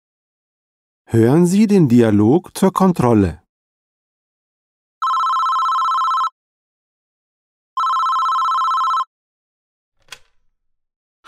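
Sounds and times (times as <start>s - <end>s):
speech: 1.1s - 3.4s
electronic telephone ringing for an incoming call: 5.0s - 6.4s, 7.8s - 9.1s.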